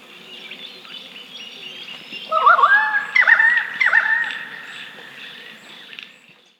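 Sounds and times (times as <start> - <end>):
pied currawong Strepera graculina giving ringing tonal calls: 2.1 - 6.2.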